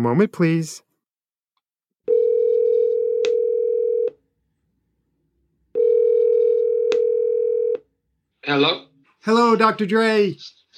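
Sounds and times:
speech: 0:00.0 - 0:00.9, 0:08.4 - 0:10.7
telephone dial tone while placing a call: 0:02.1 - 0:04.2, 0:05.8 - 0:07.8.

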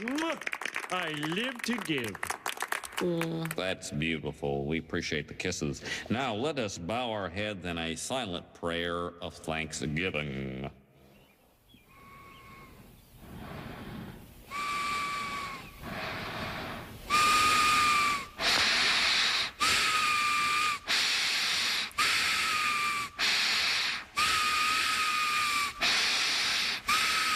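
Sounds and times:
speech: 0:00.3 - 0:02.3, 0:03.0 - 0:10.8
loud whistling snorts of breath drawn through the nose: 0:11.1 - 0:27.3.

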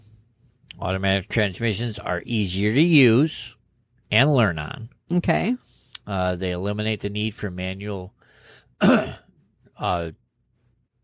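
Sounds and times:
speech: 0:00.8 - 0:08.2, 0:08.8 - 0:09.2, 0:09.8 - 0:10.2
throat clearing: 0:08.8 - 0:09.4.

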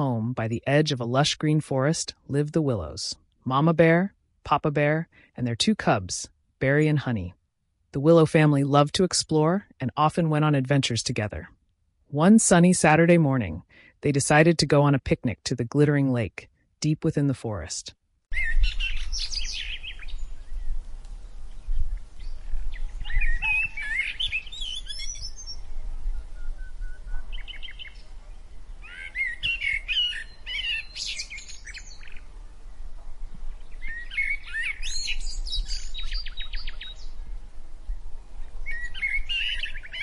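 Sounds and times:
speech: 0:00.0 - 0:19.3
birds chirping in a forest on a sunny morning: 0:18.3 - 0:37.4, 0:38.4 - 0:40.0.

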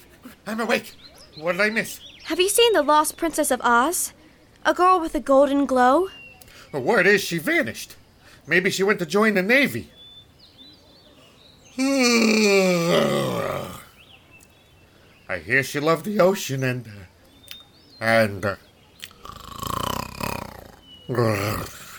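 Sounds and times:
speech: 0:00.5 - 0:10.0, 0:11.8 - 0:13.4, 0:15.3 - 0:17.1, 0:18.0 - 0:18.7, 0:21.1 - 0:21.8
mumbled speech: 0:11.7 - 0:14.0, 0:19.1 - 0:21.9
lion character snoring while asleep: 0:11.8 - 0:13.9, 0:19.1 - 0:21.9.

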